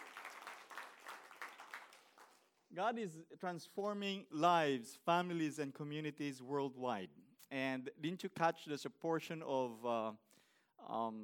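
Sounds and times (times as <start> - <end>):
church congregation applauding: 0.0 - 2.7
speech: 2.7 - 11.2.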